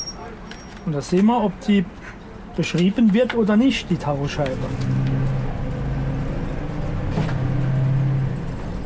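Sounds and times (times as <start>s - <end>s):
speech: 0.8s - 5.1s
truck engine droning while driving around a depot: 3.6s - 8.8s.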